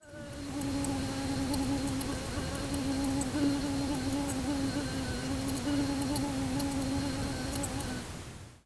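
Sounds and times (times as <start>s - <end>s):
mosquito buzzing: 0.0s - 8.2s.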